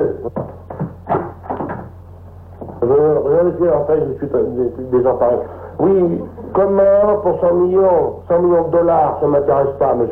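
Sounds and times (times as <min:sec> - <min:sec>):
low steady hum: 0:00.0 - 0:10.1
knocking on door: 0:00.3 - 0:02.0
speech: 0:02.9 - 0:10.1.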